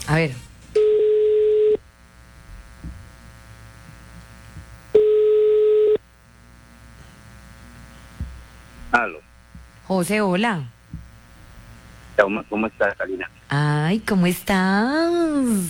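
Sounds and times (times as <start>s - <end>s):
speech: 0.1s - 0.5s, 9.9s - 10.8s, 12.2s - 15.6s
telephone call tone while dialing: 0.8s - 1.8s, 5.0s - 6.0s.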